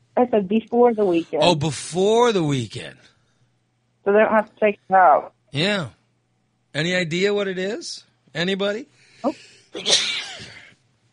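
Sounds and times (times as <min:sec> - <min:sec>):
speech: 0:00.2 - 0:03.1, 0:04.0 - 0:06.0, 0:06.8 - 0:10.1
person sneezing: 0:09.8 - 0:10.7.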